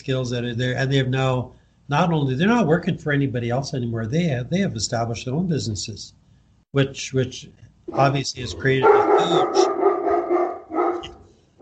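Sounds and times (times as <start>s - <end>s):
speech: 0.0s - 9.7s
dog barking: 7.9s - 11.5s.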